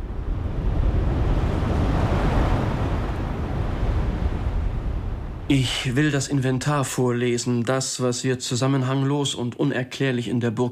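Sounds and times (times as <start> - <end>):
wind roaring through black pine forest around a castle: 0.0 - 6.2
speech: 5.5 - 10.6.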